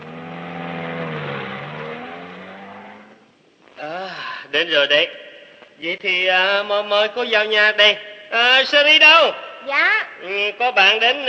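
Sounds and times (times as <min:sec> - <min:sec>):
car engine humming drone as car drives away: 0:00.0 - 0:03.4
speech: 0:04.5 - 0:05.2, 0:05.8 - 0:11.2.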